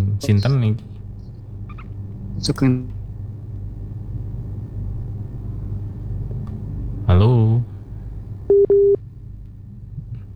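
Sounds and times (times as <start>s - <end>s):
faint hiss: 0.0s - 10.3s
speech: 0.2s - 1.0s, 2.4s - 3.0s, 7.1s - 7.7s
telephone busy signal on a dropped call-in line: 8.5s - 9.0s.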